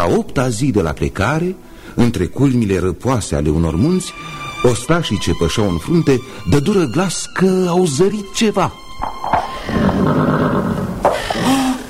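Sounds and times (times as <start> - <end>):
speech: 0.0 - 10.4
grazing horse without bridle neighing: 9.4 - 11.6.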